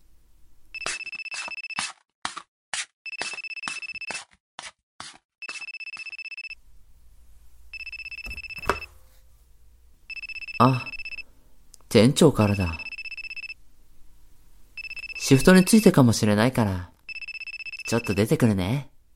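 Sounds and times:
mobile phone ringtone electronic melody: 0.8 - 1.8, 3.1 - 4.2, 5.4 - 6.6, 7.7 - 8.9, 10.1 - 11.2, 12.4 - 13.6, 14.8 - 16.0, 17.1 - 18.3
speech: 10.6 - 10.9, 11.9 - 12.8, 15.3 - 17.0, 17.9 - 18.9.

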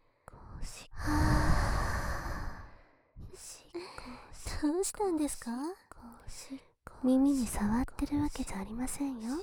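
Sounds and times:
warm breath blown very into the ear: 1.0 - 2.7
speech: 4.6 - 5.8, 6.4 - 9.4.

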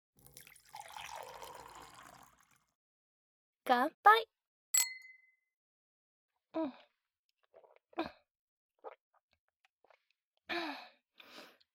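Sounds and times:
magic potion poured into a glass: 0.2 - 2.7
speech: 3.7 - 4.4, 6.6 - 6.8, 8.0 - 8.2.

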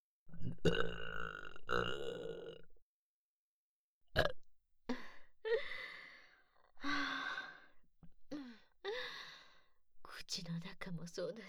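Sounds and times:
loud drawn-out throaty burps: 0.4 - 2.7, 4.2 - 4.4
speech: 0.6 - 1.1, 11.0 - 11.4
breathy sighs: 4.9 - 9.7.

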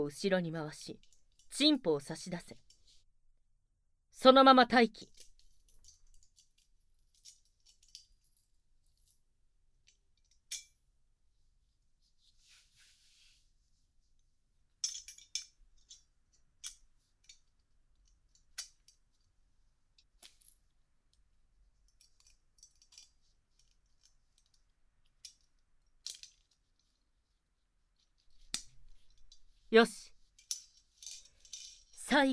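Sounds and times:
speech: 0.0 - 2.7, 4.2 - 5.2, 29.8 - 30.0, 32.1 - 32.3
metal chastity device being fitted, clinking: 5.0 - 9.2, 14.8 - 19.3, 20.0 - 20.8, 21.8 - 27.0, 28.0 - 29.5, 30.2 - 32.2.

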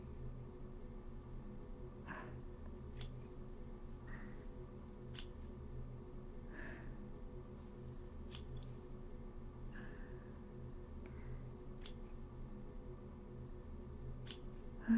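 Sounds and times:
soft steady hum: 0.0 - 14.9
crisp scissor snips trimming the ends of hair: 2.9 - 3.4, 5.1 - 5.6, 8.2 - 8.8, 11.8 - 12.2, 14.2 - 14.7.

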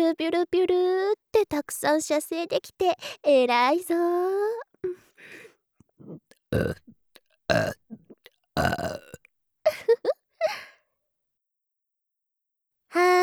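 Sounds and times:
speech: 0.1 - 5.0, 6.0 - 8.0, 8.6 - 10.6
person burping deliberately: 6.0 - 9.2.

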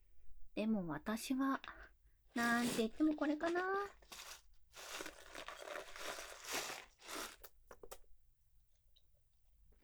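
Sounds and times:
speech: 0.6 - 4.3
crunching kaki no tane rice crackers and peanuts: 3.9 - 8.0.

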